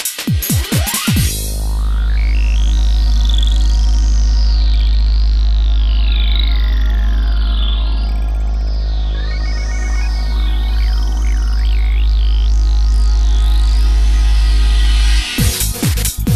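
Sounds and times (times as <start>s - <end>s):
Korg Triton synthesizer: 0.4s - 16.3s.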